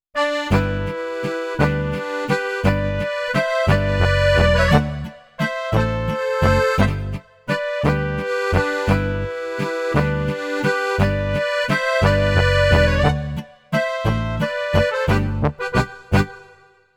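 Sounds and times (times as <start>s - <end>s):
MIDI sound module waltz with baritone and accordions: 0.2s - 16.7s.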